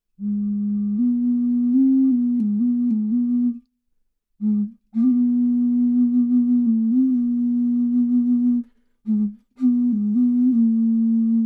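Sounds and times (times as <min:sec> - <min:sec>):
bass ocarina: 0:00.2 - 0:03.6, 0:04.4 - 0:11.4.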